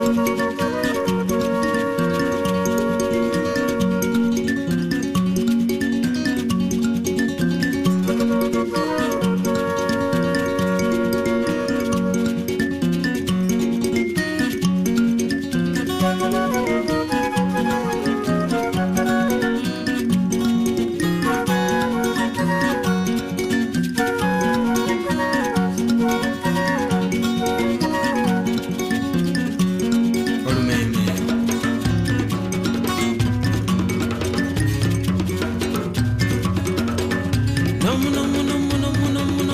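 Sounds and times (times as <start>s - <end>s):
traditional Luganda music: 0.0s - 39.5s.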